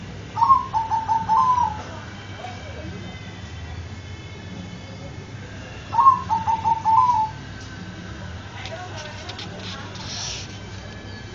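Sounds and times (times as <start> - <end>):
zebra dove cooing: 0.4 - 2.0, 5.9 - 7.4.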